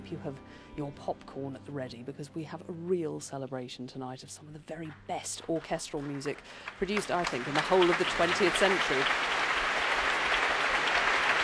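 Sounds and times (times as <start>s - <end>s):
speech: 0.1s - 9.4s
audience applause at an orchestral concert: 4.9s - 11.4s.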